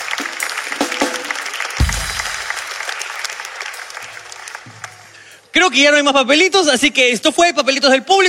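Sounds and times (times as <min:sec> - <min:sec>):
crowd applauding loudly: 0:00.0 - 0:05.5
speech: 0:05.6 - 0:08.2.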